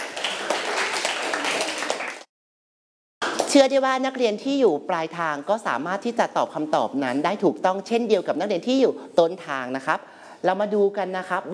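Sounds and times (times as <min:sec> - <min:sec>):
children in a class clapping for classmates: 0:00.0 - 0:02.3, 0:03.2 - 0:03.5
speech: 0:03.5 - 0:11.5.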